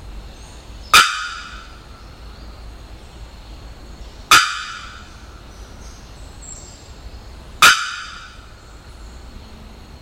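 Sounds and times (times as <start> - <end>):
Bearded bellbird explosive anvil-like bock: 0.9 - 1.9, 7.6 - 8.6.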